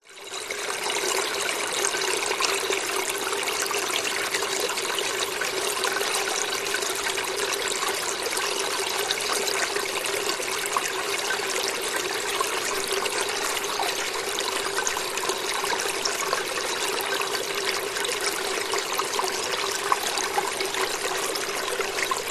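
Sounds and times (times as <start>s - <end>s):
waterfall cascading water flowing gently over rocks: 0.1s - 22.3s.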